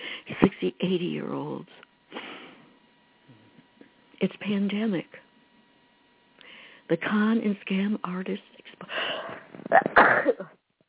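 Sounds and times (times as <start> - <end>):
speech: 0.8 - 1.9, 4.2 - 5.2, 6.9 - 9.0, 9.6 - 10.6
person sneezing: 9.2 - 10.5.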